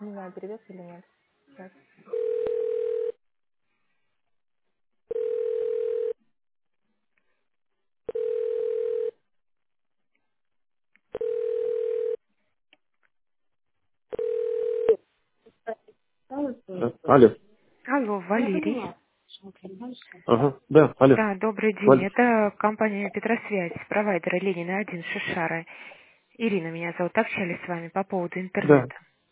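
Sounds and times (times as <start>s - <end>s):
speech: 0.3s - 2.4s, 17.1s - 17.4s, 18.3s - 18.9s, 19.6s - 29.1s
telephone ringing tone on an outgoing call: 2.1s - 3.2s, 5.1s - 6.2s, 8.1s - 9.2s, 11.2s - 12.2s, 14.1s - 15.0s.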